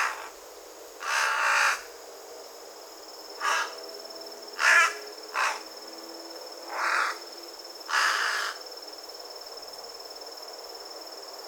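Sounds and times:
Carrion crow (Corvus corone) uttering hoarse caws: 0.0s - 0.3s, 1.0s - 1.8s, 3.4s - 3.8s, 4.6s - 5.6s, 6.7s - 7.2s, 7.9s - 8.6s.

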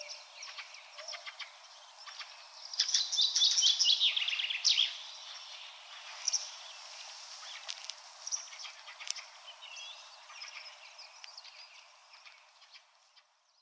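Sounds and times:
thin bird chirps and ticks: 0.0s - 6.8s, 7.4s - 13.5s
common chaffinch Fringilla coelebs singing: 0.0s - 13.5s.

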